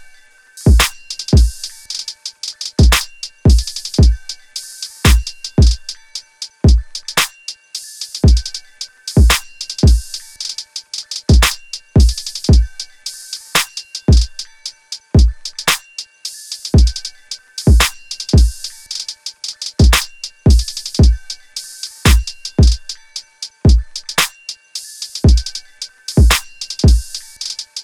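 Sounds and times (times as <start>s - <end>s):
drum loop: 0.7s - 4.3s, 5.1s - 5.9s, 6.7s - 7.3s, 8.2s - 12.9s, 13.6s - 14.5s, 15.2s - 15.8s, 16.6s - 21.4s, 22.1s - 24.3s, 25.1s - 27.8s.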